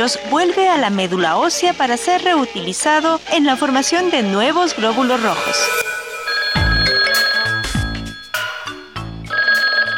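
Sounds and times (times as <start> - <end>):
speech: 0.0 - 5.9
telephone ringing: 5.2 - 9.9.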